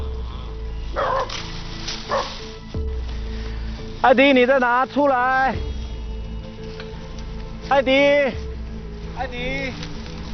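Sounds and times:
wild hunting dogs barking in a bamboo forest: 0.9s - 2.6s
speech: 4.0s - 5.7s, 7.7s - 8.4s, 9.2s - 9.8s.

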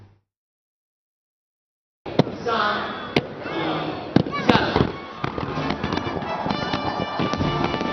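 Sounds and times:
dense continuous outdoor crowd noise: 2.1s - 7.9s
fireworks bangs and crackles over a harbour: 4.1s - 7.9s.

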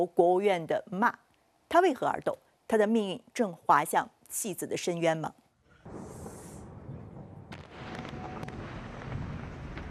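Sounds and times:
speech: 0.0s - 5.4s
sharp cracking blasts from airstrikes: 5.8s - 9.8s
explosions from airstrikes rumbling: 5.9s - 9.8s.

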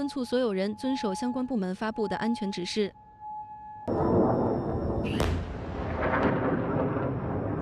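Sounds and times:
speech: 0.0s - 3.0s
constant rumbling background: 3.9s - 7.6s
explosions from air defense interceptions: 3.9s - 7.6s.

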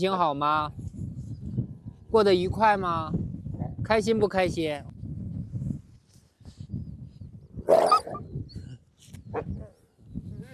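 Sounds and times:
speech: 0.0s - 0.9s, 2.1s - 4.9s
pack leader wolf barking: 7.7s - 8.2s, 9.3s - 9.8s
pack leader wolf yelping: 7.7s - 8.2s.

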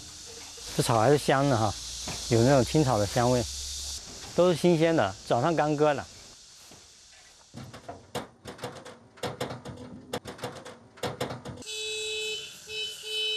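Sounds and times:
speech: 0.8s - 3.5s, 4.4s - 6.1s
rapid clattering and knocking: 7.6s - 11.6s.

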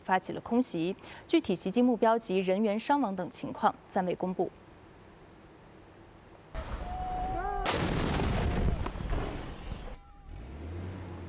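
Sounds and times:
speech: 0.1s - 4.6s
artillery fire as government forces shell rebel positions in Taiz province Yemen: 7.6s - 10.0s
heavy machine gun fire in Taiz province Yemen: 7.6s - 10.0s.

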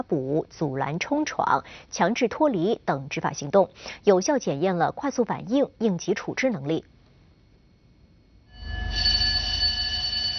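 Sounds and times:
speech: 0.0s - 6.9s
shipboard electronic battle alarm blaring aboard a China Coast Guard ship: 8.5s - 10.3s.

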